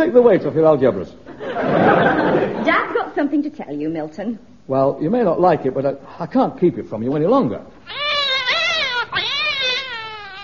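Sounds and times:
speech: 0.0 - 8.0
laughter: 1.3 - 2.9
cat yowling as its tail is pulled: 7.9 - 10.4.

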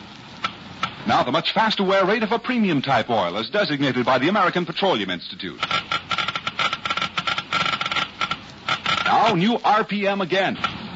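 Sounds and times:
speech: 1.0 - 5.9, 9.2 - 10.7
Geiger counter clicking rapidly: 5.6 - 9.7.

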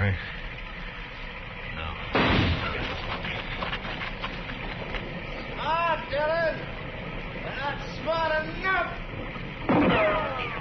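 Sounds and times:
voices talking: 0.0 - 10.6
gunshots fired at a tree: 2.1 - 3.3, 9.7 - 10.6.

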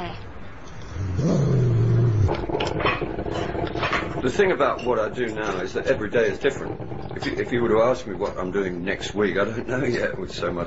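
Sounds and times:
dog growling: 0.8 - 10.6
speech: 4.2 - 10.6.

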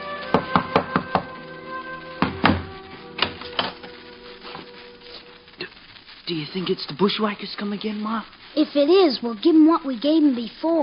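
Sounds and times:
knocking on a wooden door: 0.3 - 1.3, 2.2 - 2.7
speech: 6.3 - 10.8.

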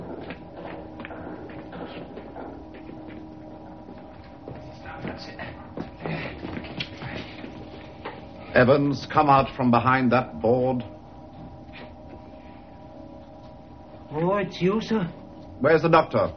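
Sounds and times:
soft shuffling footsteps approaching: 0.0 - 8.6, 10.7 - 14.4
speech: 8.6 - 10.9, 14.5 - 16.3.

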